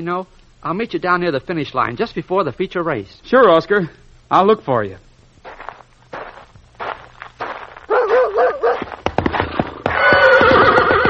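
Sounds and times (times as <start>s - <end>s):
speech: 0.0s - 5.6s
horse hooves clopping: 6.2s - 11.0s
dog barking: 7.9s - 8.9s
horse whinnying with a wavering call: 9.8s - 11.0s.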